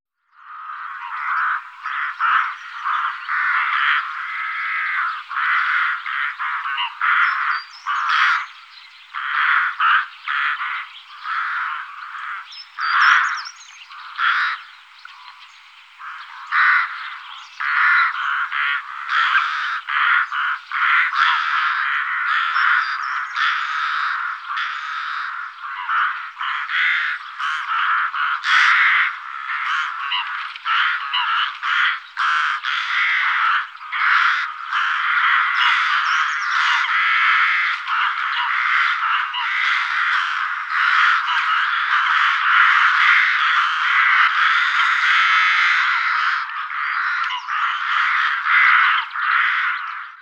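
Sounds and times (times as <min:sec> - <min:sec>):
rook calling: 0:00.4 - 0:50.2.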